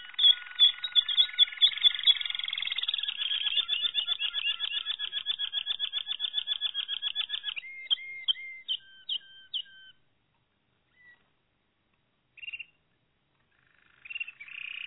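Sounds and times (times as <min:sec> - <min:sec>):
Malinois canary song with rapid rolling trills: 0:00.0 - 0:07.6.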